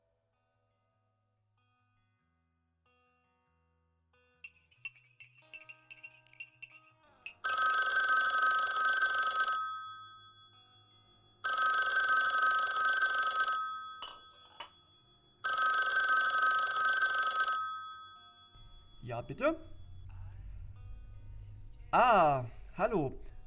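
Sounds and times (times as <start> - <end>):
telephone ringing: 7.3 - 20.0
speech: 19.1 - 19.8, 21.9 - 23.2.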